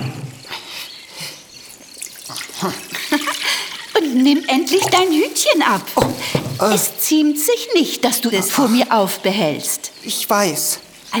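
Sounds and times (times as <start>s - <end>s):
water poured from a jug into a vase: 1.6s - 6.9s
speech: 2.6s - 2.9s, 4.2s - 11.1s.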